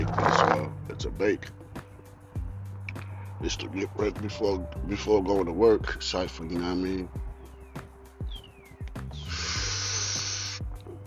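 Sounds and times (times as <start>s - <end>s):
speech: 0.5s - 1.6s, 3.4s - 7.2s
smoker taking a long hissing inhale from a blunt: 3.0s - 3.4s, 9.2s - 10.8s.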